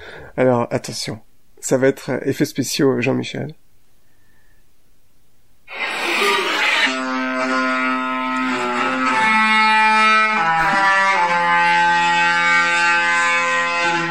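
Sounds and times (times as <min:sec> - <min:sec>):
speech: 0:00.3 - 0:03.6
cruise ship funnel horn blaring: 0:06.9 - 0:14.0.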